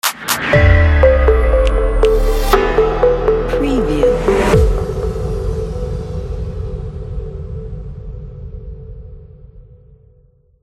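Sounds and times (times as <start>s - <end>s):
simple logo jingle: 0.6s - 5.8s.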